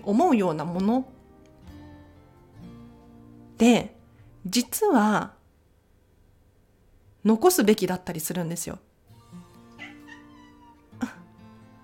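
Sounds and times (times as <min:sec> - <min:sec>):
speech: 0:00.0 - 0:01.2, 0:03.6 - 0:05.4, 0:07.2 - 0:08.9
cat meowing: 0:09.7 - 0:11.2.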